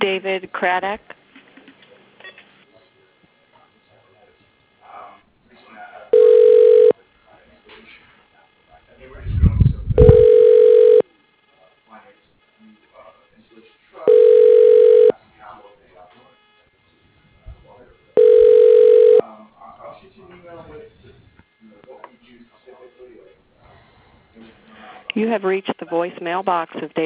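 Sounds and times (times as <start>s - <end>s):
speech: 0.2s - 1.2s, 25.2s - 27.0s
telephone ringback tone during a call transfer: 6.1s - 7.0s, 10.0s - 11.0s, 14.1s - 15.1s, 18.2s - 19.2s
low rumble: 9.1s - 10.2s.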